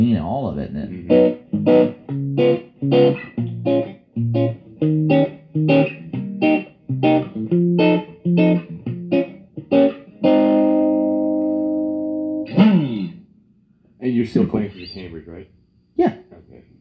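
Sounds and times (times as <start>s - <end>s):
speech: 0.0s - 3.3s
electric guitar through an amp with distortion playing chords: 1.0s - 13.2s.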